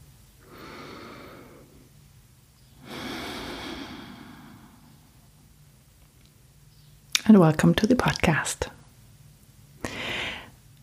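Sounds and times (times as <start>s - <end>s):
deep breath: 0.4s - 1.9s, 2.8s - 5.3s, 9.8s - 10.6s
speech: 7.3s - 8.8s.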